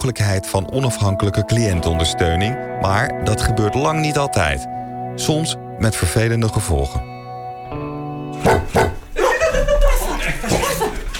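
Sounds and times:
speech: 0:00.0 - 0:07.1
dog barking and vocalizing roughly: 0:08.4 - 0:09.1
laughter: 0:08.6 - 0:11.1.

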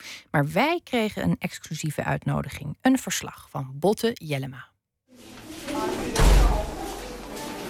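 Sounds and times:
speech: 0:00.3 - 0:05.4
heavy door slamming shut at the entrance of a secured facility: 0:05.9 - 0:06.9.

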